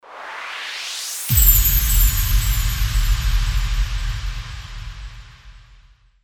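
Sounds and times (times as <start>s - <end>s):
chimed impact: 1.3s - 5.7s.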